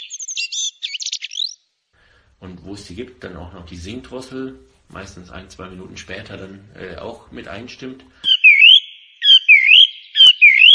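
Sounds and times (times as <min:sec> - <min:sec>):
blackbird singing loud fluting song: 0:00.0 - 0:01.6, 0:08.2 - 0:10.7
speech: 0:02.4 - 0:08.2.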